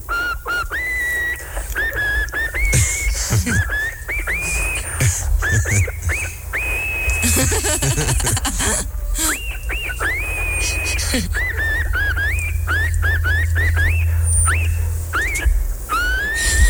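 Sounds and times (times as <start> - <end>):
hum: 0.0 - 16.6
person whistling a lively tune: 0.1 - 8.2, 9.2 - 16.6
laughter: 1.8 - 6.4, 7.1 - 12.9.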